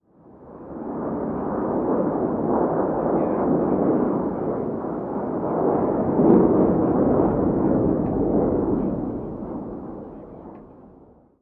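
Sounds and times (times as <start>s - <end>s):
distant animation jet: 0.6s - 11.3s.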